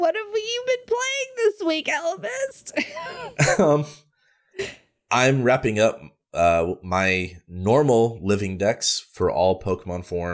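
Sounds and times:
speech: 0.0s - 4.0s, 4.6s - 10.3s
raspy coughing and throat clearing: 2.9s - 4.0s, 4.6s - 5.0s.

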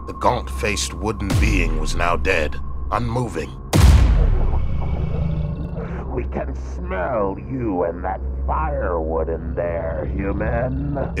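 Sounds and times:
heavy sustained low rumble: 0.0s - 11.1s
speech: 0.1s - 3.6s, 6.3s - 11.1s
loud boom: 1.3s - 2.2s, 3.7s - 5.2s.

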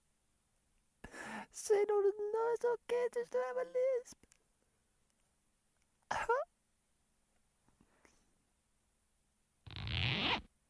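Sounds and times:
speech: 1.6s - 4.3s, 6.2s - 6.5s
zipper being pulled: 9.7s - 10.5s.

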